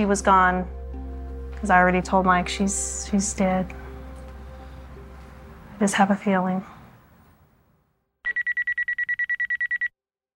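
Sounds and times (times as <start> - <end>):
speech: 0.0 - 0.8, 1.6 - 3.8, 5.8 - 6.7
faint low noise: 0.0 - 8.0
telephone ringing in a rapid buzzing trill: 8.3 - 9.9.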